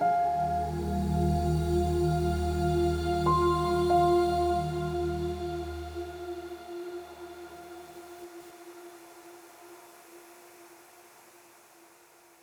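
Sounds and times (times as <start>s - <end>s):
long fading synth pads: 0.0s - 9.8s.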